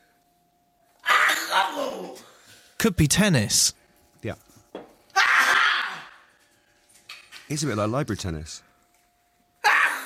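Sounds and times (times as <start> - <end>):
elderly woman sneezing: 1.1 - 2.2, 9.7 - 10.0
speech: 2.1 - 4.4, 7.5 - 8.7.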